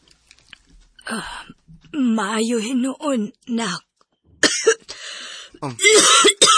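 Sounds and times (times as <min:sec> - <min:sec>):
speech: 0:01.1 - 0:03.9, 0:05.6 - 0:06.5
mother coughing with harsh raspy hacking bursts: 0:04.4 - 0:04.9, 0:05.6 - 0:06.5.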